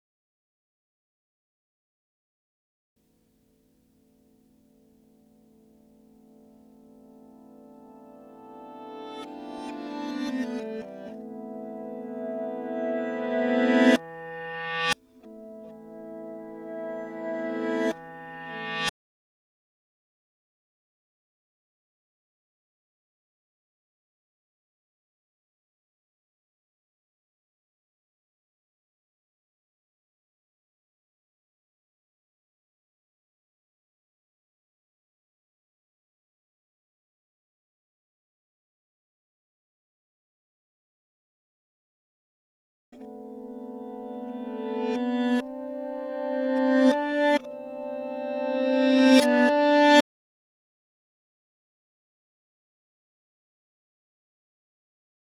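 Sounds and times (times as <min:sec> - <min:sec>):
reversed dry lyre: 0:06.0 - 0:18.9, 0:43.0 - 0:50.0.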